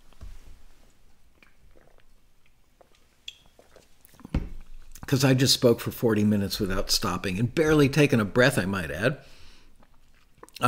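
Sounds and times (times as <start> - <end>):
person sipping an energy drink: 0.8 - 5.1, 9.4 - 10.6
speech: 5.1 - 9.4.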